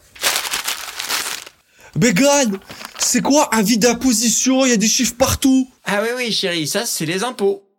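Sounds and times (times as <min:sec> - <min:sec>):
paper envelope from the mail being torn open: 0:00.0 - 0:01.6, 0:02.5 - 0:03.2
speech: 0:02.0 - 0:07.7.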